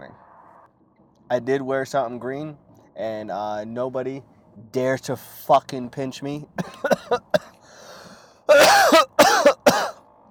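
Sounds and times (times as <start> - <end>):
speech: 1.3 - 7.5, 8.5 - 9.1
throat clearing: 6.6 - 9.9
loud harsh hacking coughs: 6.6 - 10.0.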